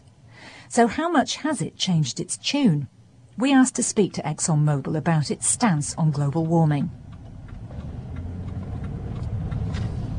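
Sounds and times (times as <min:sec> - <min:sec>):
speech: 0:00.7 - 0:07.0
car engine rumbling while driving: 0:04.7 - 0:10.1.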